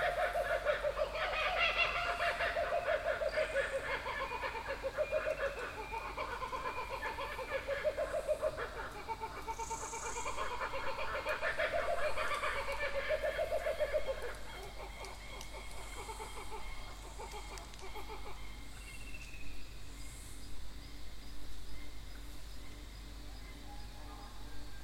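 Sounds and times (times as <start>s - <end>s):
kookaburra laughter with rollicking harsh chuckles: 0.0s - 16.6s.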